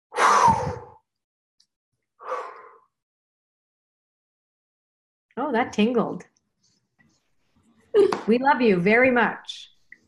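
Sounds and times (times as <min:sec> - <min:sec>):
person taking a deep breath and blowing it out: 0:00.1 - 0:01.0
speech: 0:05.4 - 0:06.3, 0:08.0 - 0:09.7.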